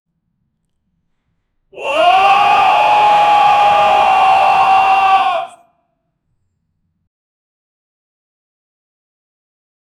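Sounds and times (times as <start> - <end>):
short thick shouting: 1.8 - 5.6.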